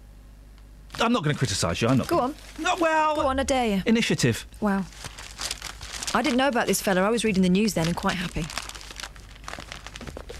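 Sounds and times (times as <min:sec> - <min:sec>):
paper being rustled and flapped: 0:00.9 - 0:03.3, 0:04.9 - 0:10.3
speech: 0:01.0 - 0:05.2, 0:06.1 - 0:08.6.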